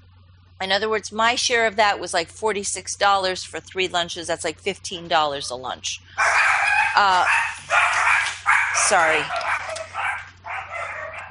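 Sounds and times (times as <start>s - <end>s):
low steady hum: 0.0s - 11.2s
speech: 0.6s - 9.4s
small dogs barking in a high-pitched yappy flurry: 6.2s - 11.2s.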